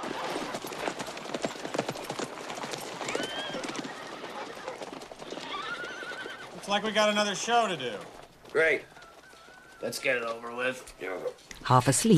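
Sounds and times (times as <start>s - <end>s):
many horses galloping into a village: 0.0s - 12.1s
horse neighing: 3.0s - 11.3s
speech: 6.7s - 8.9s, 9.8s - 12.1s.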